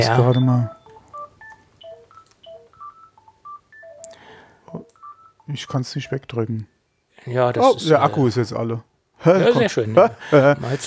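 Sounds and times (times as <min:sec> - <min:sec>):
speech: 0:00.0 - 0:00.8, 0:05.5 - 0:10.8
telephone ringing with short electronic beeps: 0:00.0 - 0:06.4.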